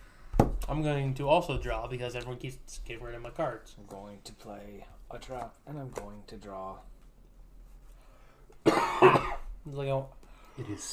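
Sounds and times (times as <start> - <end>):
speech: 0.7 - 6.9, 8.6 - 10.9
person coughing harshly: 8.6 - 9.6.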